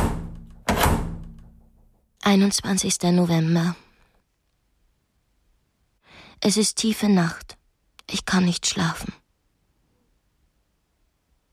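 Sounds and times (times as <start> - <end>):
heavy door slamming shut: 0.0 - 2.0
speech: 2.3 - 3.8, 6.4 - 9.2.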